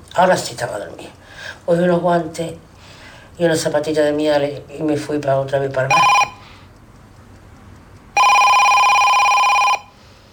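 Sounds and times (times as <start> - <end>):
hiss: 0.0 - 8.2
speech: 0.2 - 2.7, 3.4 - 6.2
telephone ringing with a steady electronic tone: 5.9 - 6.5, 8.2 - 10.0.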